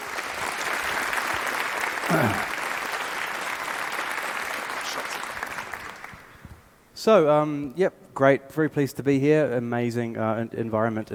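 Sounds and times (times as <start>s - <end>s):
large audience applauding a speaker: 0.0s - 6.4s
speech: 2.1s - 2.5s, 7.0s - 11.1s.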